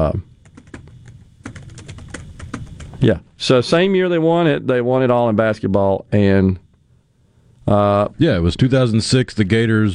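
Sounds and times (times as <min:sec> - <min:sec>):
speech: 0:00.0 - 0:00.3, 0:03.0 - 0:06.6, 0:07.7 - 0:09.9
typing on a computer keyboard: 0:00.4 - 0:03.0.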